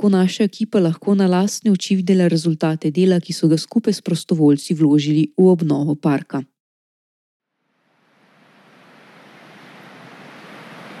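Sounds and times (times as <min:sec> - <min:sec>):
speech: 0:00.0 - 0:06.5
river flowing at a park: 0:07.9 - 0:10.9.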